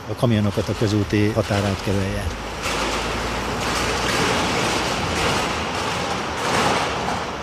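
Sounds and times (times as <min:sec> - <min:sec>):
person speaking: 0:00.0 - 0:02.4
dump truck pouring gravel around concrete railway sleepers: 0:00.0 - 0:07.4.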